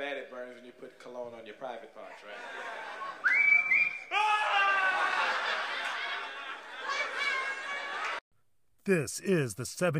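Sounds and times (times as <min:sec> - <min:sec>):
speech: 0:00.0 - 0:03.5, 0:08.8 - 0:09.9
laughter: 0:02.2 - 0:03.4, 0:04.5 - 0:08.2
whistled commercial jingle: 0:03.2 - 0:04.1.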